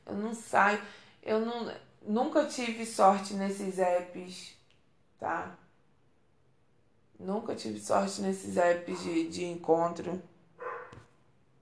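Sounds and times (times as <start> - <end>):
speech: 0.1 - 4.6, 5.2 - 5.6, 7.2 - 10.3
single short dog bark: 8.9 - 9.2, 10.6 - 11.0.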